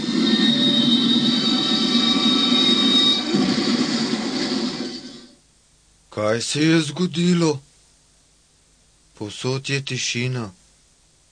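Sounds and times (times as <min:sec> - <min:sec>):
train rumbling and screeching during a derailment: 0:00.0 - 0:05.4
speech: 0:06.3 - 0:07.7, 0:09.2 - 0:10.6.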